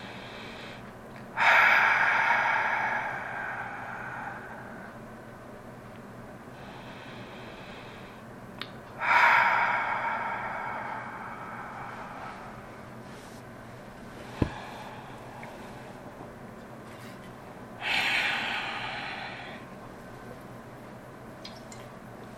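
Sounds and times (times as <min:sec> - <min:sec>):
long slow deep breaths taken to settle in before group prayer: 0:00.0 - 0:05.2, 0:06.5 - 0:08.3, 0:08.9 - 0:13.4, 0:14.1 - 0:16.3, 0:17.8 - 0:19.8.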